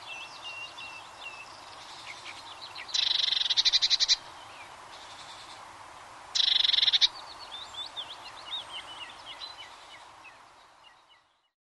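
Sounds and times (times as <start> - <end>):
Eurasian blue tit soft twittering: 0.0 - 5.6, 6.4 - 11.5
Eurasian blue tit singing rattling trills: 2.9 - 4.2, 6.4 - 7.1.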